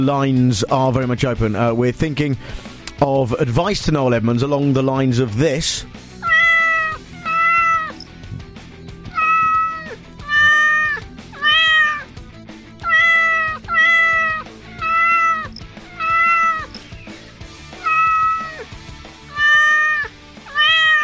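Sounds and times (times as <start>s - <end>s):
speech: 0.0s - 6.1s
cat meowing: 6.2s - 8.1s, 9.0s - 12.1s, 12.8s - 16.8s, 17.6s - 21.0s.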